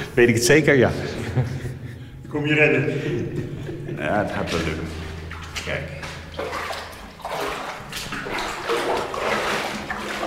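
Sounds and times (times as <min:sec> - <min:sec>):
speech: 0:00.2 - 0:01.7, 0:02.3 - 0:03.4, 0:04.0 - 0:05.0, 0:05.6 - 0:06.5
laughter: 0:01.0 - 0:04.6
person wading and splashing through standing water in a tunnel: 0:04.1 - 0:10.2.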